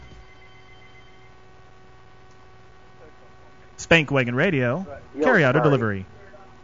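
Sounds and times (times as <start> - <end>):
phone line electronic ringing tone for an outgoing call: 0.0 - 1.5
low hum: 0.0 - 6.6
speech: 3.9 - 6.2.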